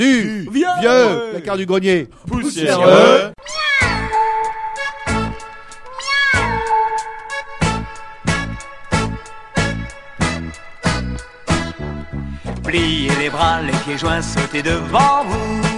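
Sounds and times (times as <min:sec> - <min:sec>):
speech: 0:00.0 - 0:03.6, 0:12.7 - 0:15.6
cat meows woven into an upbeat musical track: 0:03.4 - 0:04.5, 0:05.9 - 0:07.0
upbeat musical track with steady rhythmic percussion: 0:07.0 - 0:15.7.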